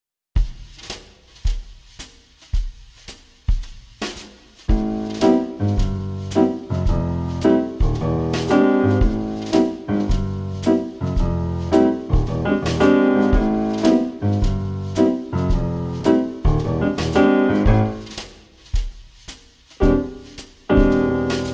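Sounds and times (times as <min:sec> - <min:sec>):
swing jazz music tuned to 432 Hz: 0:04.1 - 0:18.4, 0:19.8 - 0:21.5.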